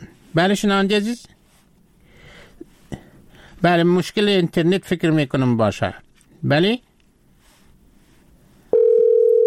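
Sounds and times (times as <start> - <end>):
speech: 0.4 - 1.4, 3.6 - 6.9
steady mid-pitched telephone tone of a call failing to connect: 8.7 - 9.4.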